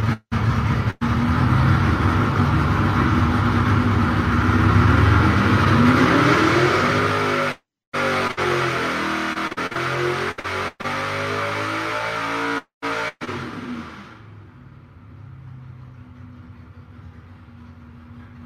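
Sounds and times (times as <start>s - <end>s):
Pontiac V8 engine revving under heavy load on a dyno: 0.0s - 16.4s.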